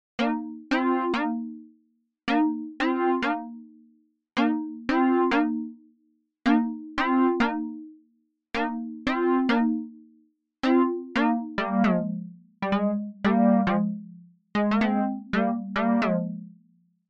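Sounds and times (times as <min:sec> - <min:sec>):
polyphonic synthesizer: 0:00.2 - 0:01.6, 0:02.3 - 0:03.7, 0:04.4 - 0:05.8, 0:06.5 - 0:07.8, 0:08.6 - 0:09.9, 0:10.6 - 0:16.6.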